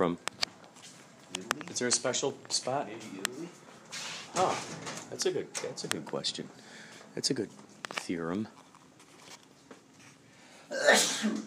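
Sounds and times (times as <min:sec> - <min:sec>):
speech: 0:00.0 - 0:00.3, 0:01.8 - 0:08.6
person sneezing: 0:10.7 - 0:11.4.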